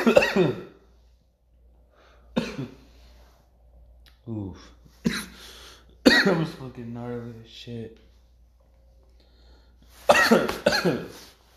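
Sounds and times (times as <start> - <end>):
speech: 0.0 - 0.7, 2.4 - 2.8, 4.3 - 5.2, 6.2 - 8.0, 10.0 - 11.3
harsh raspy coughs after inhaling smoke: 0.0 - 0.8, 2.3 - 2.9, 5.0 - 6.6, 10.0 - 11.3.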